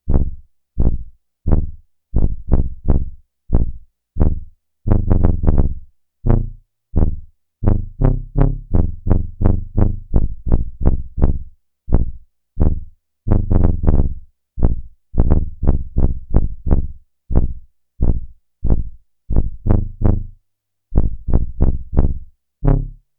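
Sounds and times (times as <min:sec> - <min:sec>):
Roland SH-101 synthesizer tuba factory patch: 0:00.1 - 0:20.4, 0:21.0 - 0:23.0.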